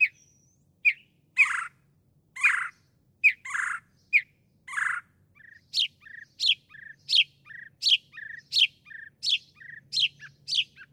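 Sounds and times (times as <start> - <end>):
Northern mockingbird song of harsh scratchy notes: 0.0 - 1.8, 2.4 - 10.9.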